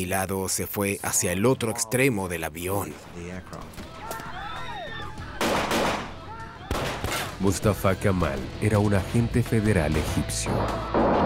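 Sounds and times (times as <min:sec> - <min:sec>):
speech: 0:00.0 - 0:04.1, 0:07.4 - 0:11.2
sharp gunshot: 0:05.4 - 0:06.1, 0:06.7 - 0:07.4
gunfire volley: 0:05.4 - 0:07.4.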